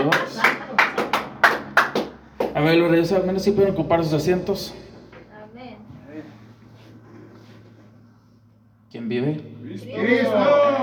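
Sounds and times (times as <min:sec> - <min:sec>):
audience at a Christian church service clapping in loose unison: 0:00.0 - 0:02.7
speech: 0:02.6 - 0:04.8, 0:09.1 - 0:10.5.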